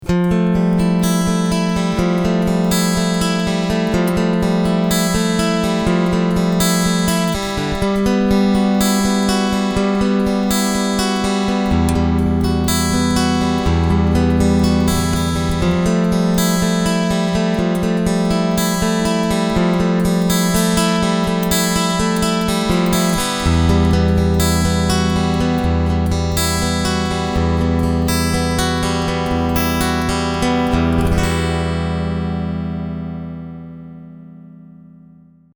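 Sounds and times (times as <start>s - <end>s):
picked strings with treble and full bass: 0.0s - 33.6s.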